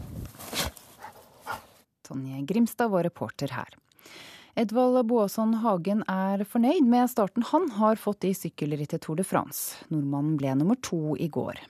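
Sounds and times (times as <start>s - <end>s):
search dog sniffing for blood and semen traces: 0.4s - 1.8s
speech: 2.1s - 11.6s.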